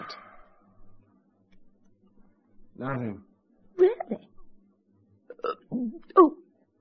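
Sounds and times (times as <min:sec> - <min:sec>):
speech: 0:02.8 - 0:04.3, 0:05.7 - 0:06.4
person hiccuping: 0:05.3 - 0:06.4.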